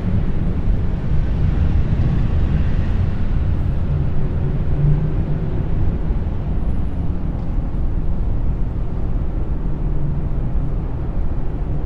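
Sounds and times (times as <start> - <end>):
dense low brown noise rumble: 0.0 - 11.8.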